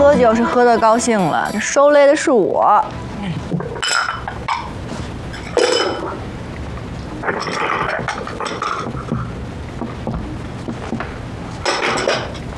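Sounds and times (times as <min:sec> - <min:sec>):
speech: 0:00.1 - 0:03.3
dishes clattering and clinking while being washed: 0:03.6 - 0:04.7, 0:05.3 - 0:06.2, 0:07.3 - 0:09.1, 0:11.6 - 0:12.5.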